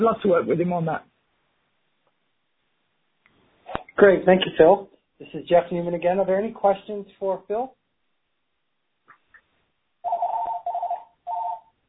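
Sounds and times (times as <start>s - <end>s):
speech: 0.0s - 1.1s, 4.0s - 7.8s
phone ringing during a conference call: 10.0s - 11.7s.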